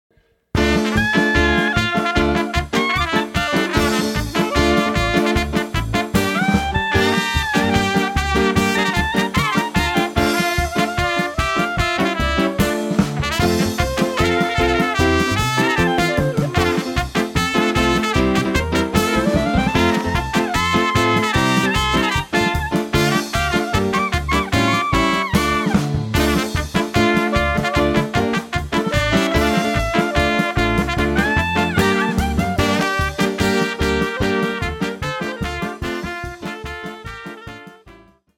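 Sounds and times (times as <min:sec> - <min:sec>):
klezmer music: 0:00.6 - 0:38.3.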